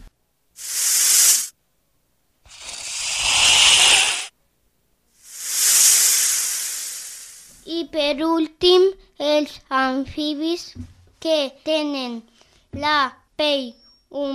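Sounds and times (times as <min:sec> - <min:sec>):
snake hissing: 0:00.6 - 0:01.5, 0:02.5 - 0:04.3, 0:05.2 - 0:07.6
speech: 0:07.9 - 0:14.3.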